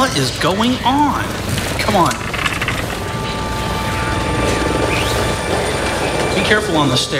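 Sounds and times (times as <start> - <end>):
faint helicopter whine: 0.0 - 7.1
speech: 0.1 - 2.3, 6.5 - 7.1
helicopter engine broadband roar: 0.7 - 7.1
landing helicopter rotor thudding: 1.2 - 6.6.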